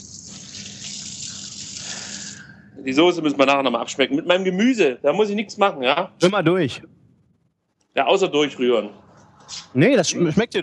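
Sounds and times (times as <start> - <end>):
tap water running into a sink while washing a duck breast: 0.0 - 2.4
speech: 2.8 - 7.0, 8.0 - 10.6.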